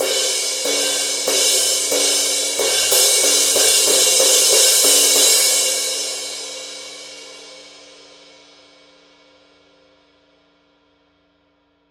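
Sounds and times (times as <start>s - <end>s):
Paiste Rude crash cymbal pattern: 0.0s - 9.0s.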